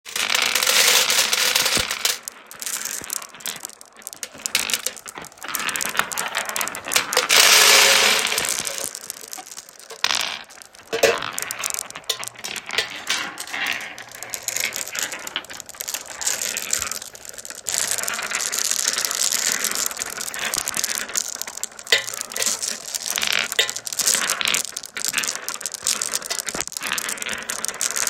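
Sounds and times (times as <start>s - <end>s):
marbles: 0.0s - 28.0s.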